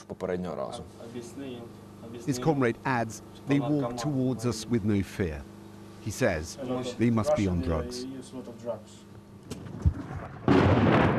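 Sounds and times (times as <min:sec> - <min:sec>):
speech: 0:00.1 - 0:09.6
artillery firing thuds and booms: 0:09.6 - 0:11.1.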